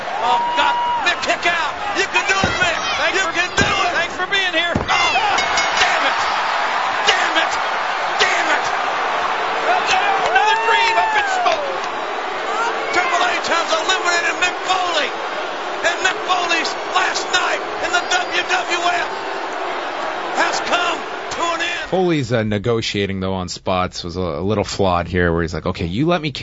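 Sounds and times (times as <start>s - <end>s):
excited shouts: 0.0s - 22.0s
large arena crowd roaring and chanting: 0.0s - 22.0s
speech: 0.2s - 0.6s, 1.3s - 5.1s, 13.0s - 19.4s, 20.4s - 26.4s
sharp loud impacts: 1.4s - 6.4s.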